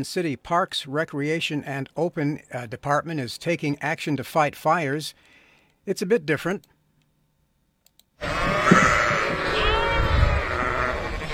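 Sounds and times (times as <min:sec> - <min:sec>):
speech: 0:00.0 - 0:06.7
large flock of sheep bleating: 0:08.2 - 0:11.3.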